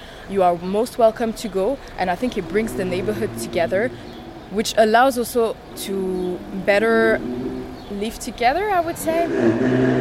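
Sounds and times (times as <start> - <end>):
speech: 0.3 - 10.0
red Ferrari driving past on a street in Geneva: 2.0 - 8.2, 8.8 - 10.0.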